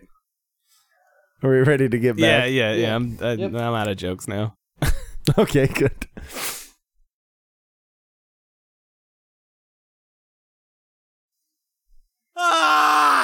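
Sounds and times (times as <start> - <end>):
speech: 1.4 - 6.1
voice imitating a screaming arrow whizzing past: 12.4 - 13.2.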